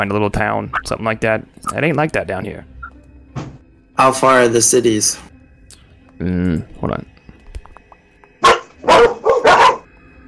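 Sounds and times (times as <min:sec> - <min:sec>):
speech: 0:00.0 - 0:02.7, 0:03.4 - 0:05.3, 0:06.2 - 0:07.1
dog-like barks from snakes: 0:08.4 - 0:09.9.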